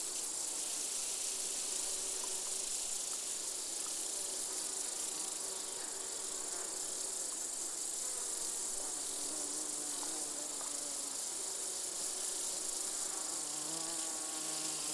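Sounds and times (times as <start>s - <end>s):
chorus of bees, grasshoppers and crickets in an open meadow: 0.0s - 14.9s.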